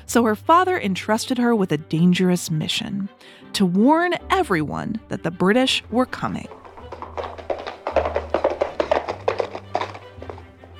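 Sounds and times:
speech: 0.1s - 6.6s
horse hooves galloping: 6.0s - 10.7s.

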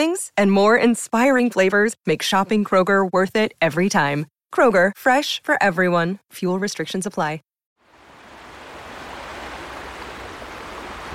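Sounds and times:
speech: 0.0s - 7.5s
river water rushing over rapids: 7.8s - 11.1s.

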